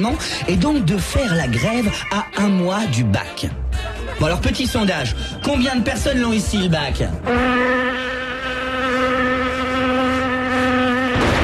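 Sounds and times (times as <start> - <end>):
speech: 0.0 - 8.1
fly buzzing: 7.2 - 11.4.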